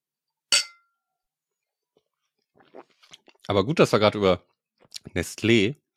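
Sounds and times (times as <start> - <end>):
drinking glasses clinking in a toast: 0.5 - 0.9
speech: 2.6 - 5.8.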